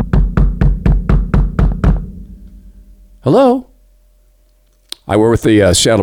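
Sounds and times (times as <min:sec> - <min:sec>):
police knocking on a pastor's door: 0:00.0 - 0:02.3
speech: 0:03.3 - 0:03.7, 0:05.1 - 0:06.0.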